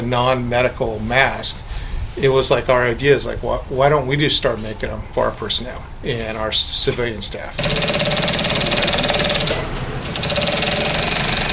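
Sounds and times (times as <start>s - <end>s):
speech: 0.1s - 1.6s, 2.2s - 8.3s
sewing machine stitching fabric masks in a fire department sew shop: 7.6s - 11.5s.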